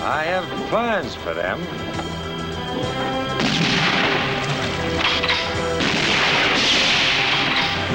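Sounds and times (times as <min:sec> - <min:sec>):
speech: 0:00.1 - 0:02.2, 0:02.8 - 0:04.4
gunfire shooting away and splintering the oars of a rowing boat: 0:03.4 - 0:07.9.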